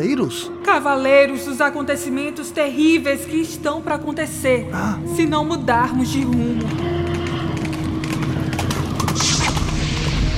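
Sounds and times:
speech: 0.0s - 6.9s
horses galloping in the distance: 6.1s - 9.8s.

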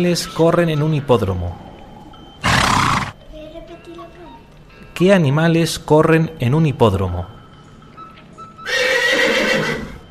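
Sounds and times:
speech: 0.0s - 1.7s, 5.0s - 7.4s
faint noise: 0.0s - 10.0s
horse whinnying shrill and wavering: 2.4s - 3.2s, 8.6s - 10.0s.

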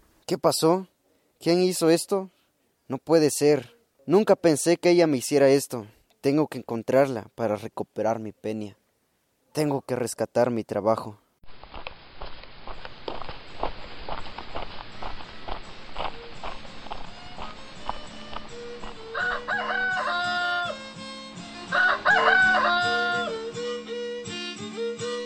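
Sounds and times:
speech: 0.3s - 8.8s, 9.6s - 11.2s
rhythmic clopping or tapping: 13.1s - 25.2s
rooster crowing: 18.4s - 20.9s, 21.6s - 23.5s.

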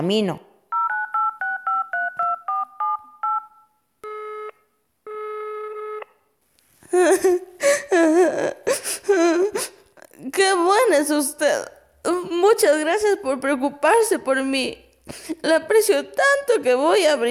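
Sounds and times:
speech: 0.0s - 0.5s, 11.0s - 11.8s, 12.4s - 17.3s
telephone keypad being dialed: 0.7s - 4.5s
person wailing: 6.9s - 10.2s.

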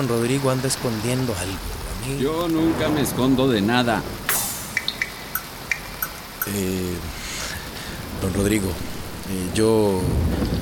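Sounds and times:
speech: 0.0s - 4.2s, 6.4s - 7.2s, 8.2s - 10.6s
heavy rain pouring during a thunderstorm: 0.0s - 10.6s.

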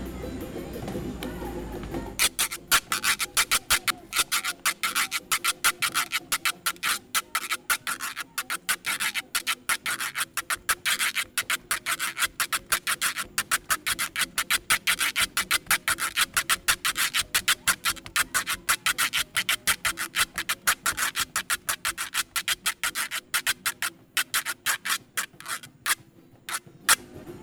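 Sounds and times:
güiro scraped in santiagueño style opening a fandango: 0.1s - 27.3s.

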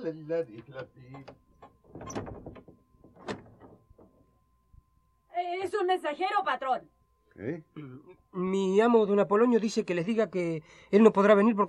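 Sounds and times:
speech: 0.0s - 2.3s, 5.4s - 11.6s
clunky knocks of wood and metal from a door: 0.5s - 4.4s
door latch rattling: 0.6s - 4.2s.

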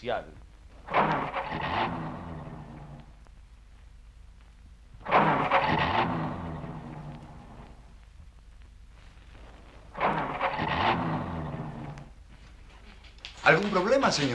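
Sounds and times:
speech: 0.0s - 0.5s, 13.5s - 14.3s
car engine with a faulty carburettor and flooded motor cranking without starting: 0.8s - 3.1s, 5.0s - 7.8s, 10.0s - 12.2s.

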